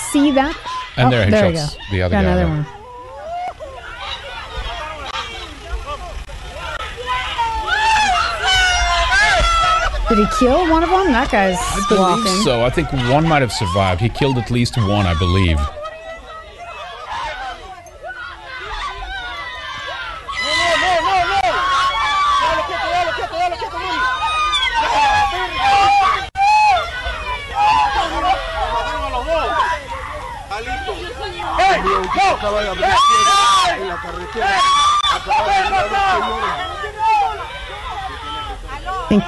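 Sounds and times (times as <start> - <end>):
loud dense crowd commotion with shouting and chatter: 0.0 - 39.2
speech: 0.1 - 2.8, 10.1 - 15.8
women shrieking and crying out: 7.0 - 12.7, 14.9 - 39.2
laughter: 11.5 - 15.7.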